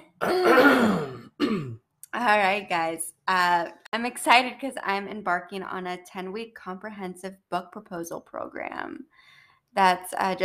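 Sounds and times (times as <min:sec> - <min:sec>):
drawn-out rumbling throat clearing: 0:00.2 - 0:01.8
speech: 0:02.2 - 0:10.4.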